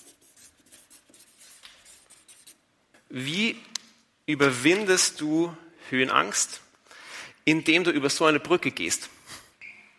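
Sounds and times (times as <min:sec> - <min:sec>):
pen scratching while writing during a live talk on stage: 0:00.0 - 0:02.6
speech: 0:03.1 - 0:03.7, 0:04.3 - 0:06.6, 0:07.4 - 0:09.2.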